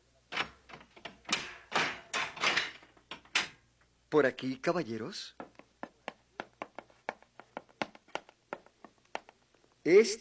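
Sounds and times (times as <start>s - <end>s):
heavy house door opening with latch and hinges: 0.3s - 3.6s
speech: 4.1s - 5.4s, 9.8s - 10.1s.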